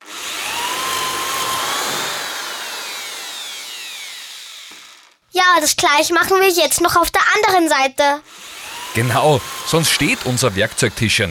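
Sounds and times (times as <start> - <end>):
power drill boring pilot holes and driving screws into a workbench board and leg: 0.0 - 5.3, 8.2 - 11.2
speech: 5.5 - 11.2.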